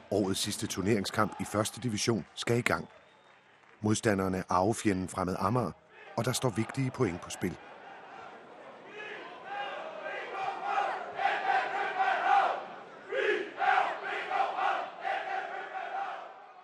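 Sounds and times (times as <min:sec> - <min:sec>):
large football stadium crowd roaring and chanting: 0:00.0 - 0:02.0, 0:05.8 - 0:16.6
speech: 0:00.1 - 0:03.0, 0:03.8 - 0:07.7.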